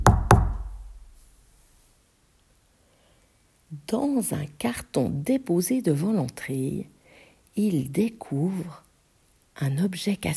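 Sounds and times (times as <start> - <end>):
loud heavy booming knocks on a door: 0.0 - 0.9
speech: 3.9 - 7.0, 7.6 - 8.8, 9.6 - 10.3.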